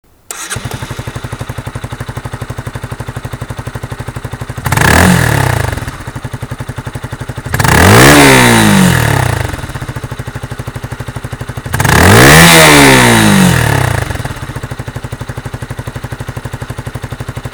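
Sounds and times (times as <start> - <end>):
engine exhaust: 0.2 - 17.5.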